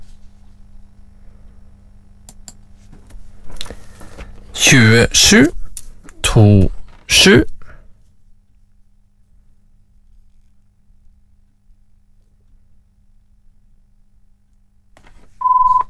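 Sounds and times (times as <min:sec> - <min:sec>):
low hum: 0:00.0 - 0:15.8
speech: 0:04.7 - 0:05.6, 0:06.4 - 0:07.5
telephone giving a short electronic ring tone: 0:15.4 - 0:15.8.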